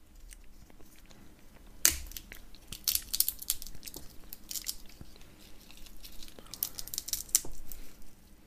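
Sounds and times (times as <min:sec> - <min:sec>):
person chewing nuts: 0:00.0 - 0:08.4.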